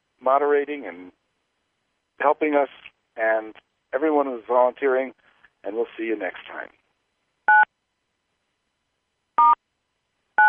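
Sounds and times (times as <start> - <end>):
speech: 0.2 - 1.2, 2.2 - 6.8
telephone keypad tones stopping a conference call recording: 7.5 - 7.7.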